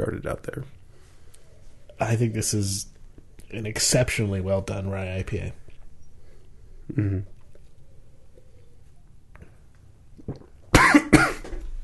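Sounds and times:
speech: 0.0s - 0.8s, 2.0s - 2.9s, 3.5s - 5.6s, 6.9s - 7.3s
throaty murmur: 6.8s - 7.4s
person coughing sharply: 10.8s - 11.5s.

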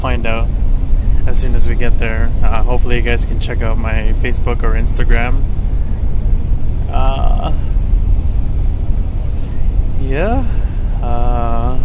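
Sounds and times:
indistinct voices inside a bus: 0.0s - 0.5s, 1.2s - 5.4s, 6.9s - 7.7s, 9.9s - 11.8s
moving bus engine rumble and road noise: 0.0s - 11.8s
speech: 1.4s - 5.6s, 6.9s - 7.7s, 10.0s - 11.8s.

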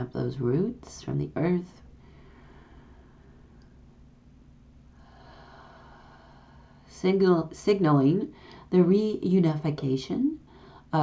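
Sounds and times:
speech: 0.0s - 1.8s, 7.0s - 11.0s
slow deep breathing during a guided meditation: 2.0s - 3.9s, 4.9s - 6.9s.

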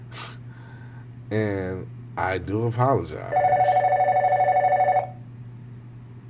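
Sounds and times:
speech: 1.3s - 3.8s
telephone ringing with electronic trill: 3.3s - 5.2s.

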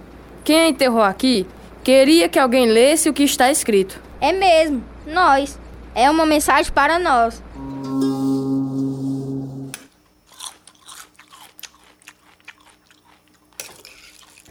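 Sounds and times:
speech: 0.5s - 8.1s
brief sustained musical tone: 7.5s - 9.8s
loud sloppy open-mouthed chewing of food: 10.3s - 14.4s.

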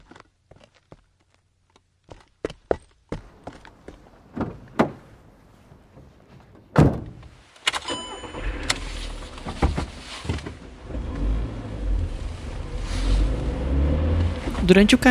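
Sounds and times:
car engine rumbling as the vehicle pulls away and drives: 3.2s - 15.0s
car engine starting with clicks and clunks: 7.7s - 15.0s
speech: 14.7s - 15.0s.

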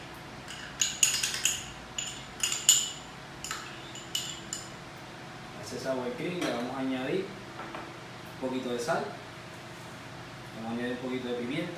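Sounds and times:
spoon clinking against a mixing bowl while scooping sour cream: 0.4s - 4.8s
speech: 5.9s - 7.4s, 8.4s - 9.2s, 10.6s - 11.7s.

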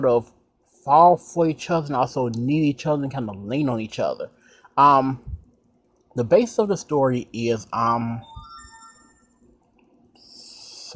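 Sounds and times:
speech: 0.0s - 5.4s, 6.2s - 8.3s
mobile phone ringtone: 8.2s - 9.4s.

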